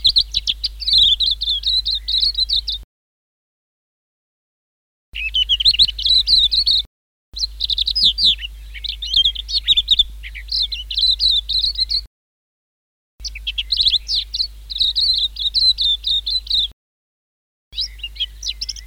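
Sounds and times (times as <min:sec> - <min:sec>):
white-eye song of high twittering chirps and trills: 0:00.0 - 0:02.8, 0:05.2 - 0:12.1, 0:13.2 - 0:16.7, 0:17.8 - 0:18.8.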